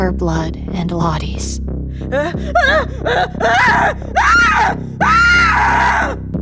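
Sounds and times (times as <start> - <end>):
speech: 0.1 - 6.2
woman screaming: 2.2 - 6.2.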